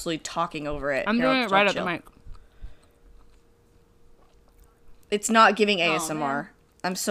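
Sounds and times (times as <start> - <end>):
speech: 0.0 - 2.2, 5.1 - 7.1
chewing a cheese toastie: 2.0 - 5.1.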